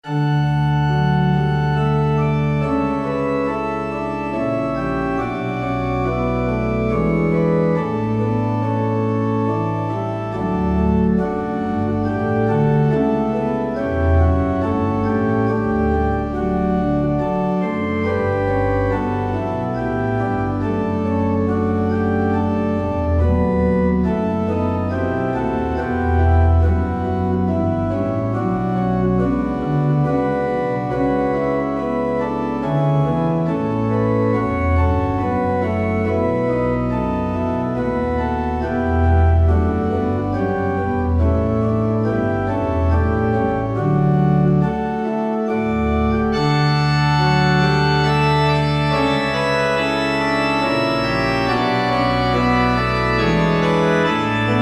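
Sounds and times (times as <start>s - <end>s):
organ playing: 0.0s - 54.6s
trumpet in D playing: 46.3s - 54.6s.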